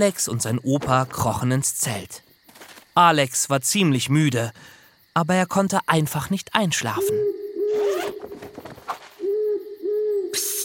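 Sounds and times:
speech: 0.0 - 2.3, 3.0 - 7.8
owl hooting at night outside a tent: 6.9 - 10.6.

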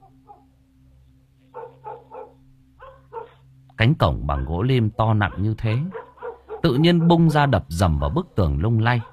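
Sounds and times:
dog barking at a heavy ironwood gate: 0.0 - 0.5, 1.5 - 3.4, 4.3 - 4.6, 5.2 - 7.6, 9.0 - 9.1
constant low hum: 0.0 - 9.1
dog yipping: 0.2 - 0.5, 1.5 - 3.4, 5.3 - 7.5
speech: 3.8 - 6.0, 6.6 - 9.1.

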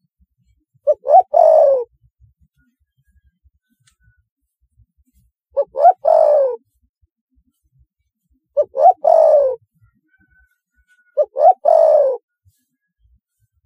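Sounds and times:
spotted dove three-part coo: 0.8 - 1.9, 5.6 - 6.7, 8.6 - 9.6, 10.9 - 12.2.

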